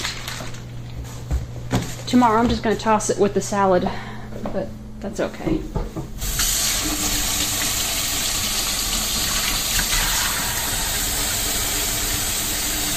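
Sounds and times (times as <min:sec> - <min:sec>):
speech: 0:02.1 - 0:06.0
tap water running at a kitchen sink while hands are washed: 0:06.2 - 0:12.9.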